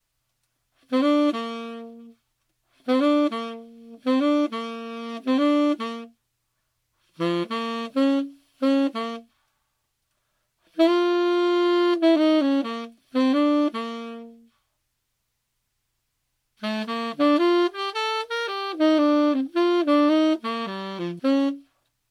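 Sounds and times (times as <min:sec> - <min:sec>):
slow solo saxophone: 0:00.8 - 0:06.2, 0:07.0 - 0:09.7, 0:10.6 - 0:14.8, 0:16.6 - 0:21.9.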